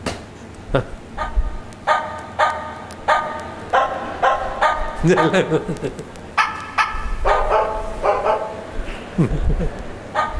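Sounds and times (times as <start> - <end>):
speech: 0.7 - 1.0, 5.0 - 6.2, 9.2 - 9.9
dog barking at night in a village: 1.2 - 5.6, 6.4 - 8.6, 10.2 - 10.3
laughter: 5.0 - 6.3, 9.0 - 10.0.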